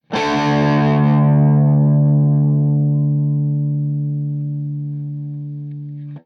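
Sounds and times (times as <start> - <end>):
D power chord of two notes on guitar: 0.0 - 6.2.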